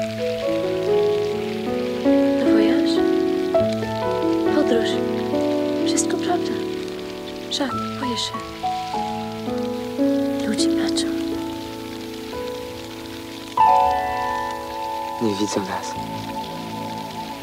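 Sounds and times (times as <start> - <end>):
rain pattering on a hard surface: 0.0 - 17.4
speech: 7.6 - 9.2, 10.6 - 11.3, 15.2 - 16.5.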